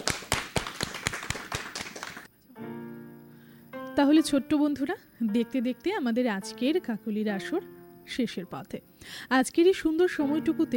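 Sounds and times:
rhythmic applause for a young child performer: 0:00.0 - 0:02.3
speech: 0:04.0 - 0:10.7.

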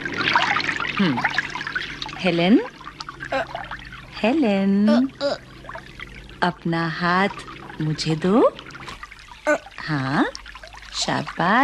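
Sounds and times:
water running from a tap: 0:00.0 - 0:11.6
speech: 0:01.0 - 0:01.5, 0:02.2 - 0:02.7, 0:03.3 - 0:03.6, 0:04.2 - 0:05.5, 0:06.4 - 0:08.6, 0:09.5 - 0:10.2, 0:11.1 - 0:11.6.

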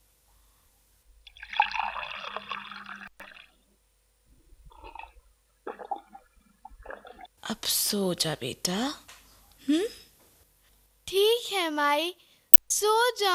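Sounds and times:
water pouring into a vessel: 0:01.3 - 0:03.6, 0:04.5 - 0:07.3
speech: 0:07.6 - 0:09.0, 0:09.7 - 0:10.0, 0:11.1 - 0:13.3.

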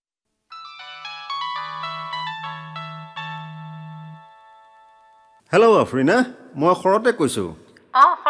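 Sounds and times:
phone ringtone melody while placing a call: 0:00.5 - 0:05.4
speech: 0:05.5 - 0:08.1.

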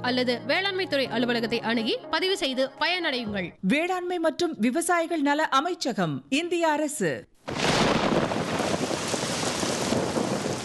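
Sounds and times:
speech: 0:00.0 - 0:07.6
steady heavy rain: 0:07.5 - 0:10.6.

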